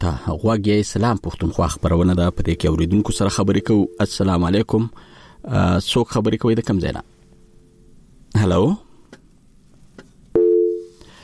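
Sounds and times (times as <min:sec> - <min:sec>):
speech: 0:00.0 - 0:07.1, 0:08.3 - 0:08.8
telephone busy tone after call line drops: 0:02.3 - 0:04.3, 0:10.4 - 0:10.9.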